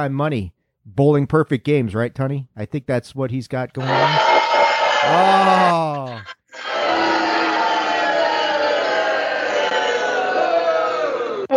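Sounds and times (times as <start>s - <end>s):
speech: 0.0s - 4.3s, 5.0s - 6.8s
laughter: 3.8s - 9.1s
large crowd booing: 3.8s - 11.5s.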